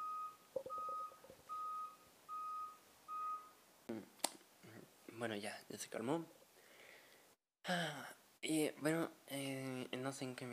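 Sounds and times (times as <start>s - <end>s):
electronic alarm beeping: 0.0s - 3.6s
speech: 5.2s - 6.4s, 7.7s - 10.5s.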